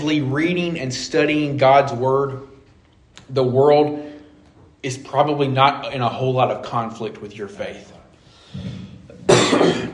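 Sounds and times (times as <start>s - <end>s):
speech: 0.0s - 2.5s, 3.2s - 4.1s, 4.8s - 8.8s, 9.5s - 9.9s
raspy cough from a preacher during a sermon: 9.2s - 9.9s.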